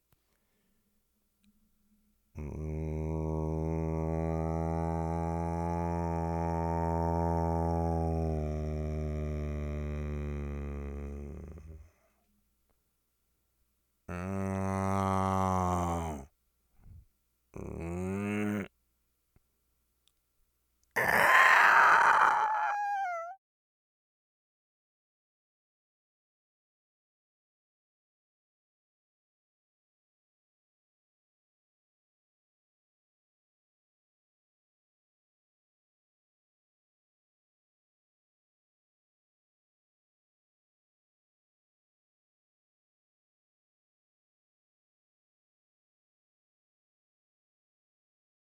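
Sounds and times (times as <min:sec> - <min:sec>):
monster moaning: 0:02.4 - 0:11.9, 0:14.1 - 0:16.3, 0:17.6 - 0:18.7, 0:21.0 - 0:23.4
monster squealing: 0:14.1 - 0:16.2, 0:21.0 - 0:23.4.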